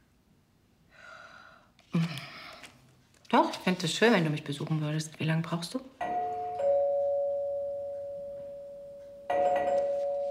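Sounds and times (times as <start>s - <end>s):
speech: 3.3s - 6.0s
doorbell at the door ringing ding-dong chime: 6.0s - 10.3s.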